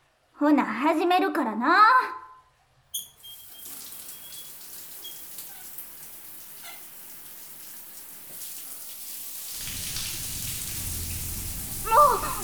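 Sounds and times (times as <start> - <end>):
speech: 0.4 - 2.2
brief squeak: 2.9 - 5.8
shower water running while a boy's hair is washed in a bathroom: 3.0 - 12.4.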